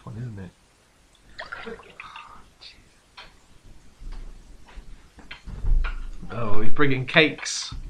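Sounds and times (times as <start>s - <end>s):
speech: 0.2s - 0.6s, 1.6s - 2.0s, 6.4s - 7.8s
orange juice poured into a glass: 1.3s - 2.4s.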